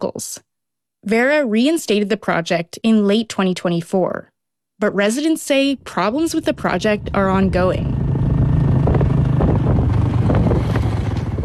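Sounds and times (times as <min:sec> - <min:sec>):
speech: 0:00.0 - 0:08.0
heavy wind buffeting the microphone: 0:05.8 - 0:11.4
motorbike engine humming on a rural road: 0:06.0 - 0:11.4.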